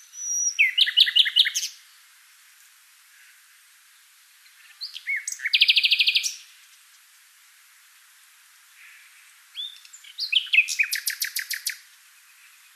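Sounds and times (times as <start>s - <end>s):
common nightingale Luscinia megarhynchos singing: 0.0s - 2.1s, 4.4s - 6.6s, 8.9s - 12.7s.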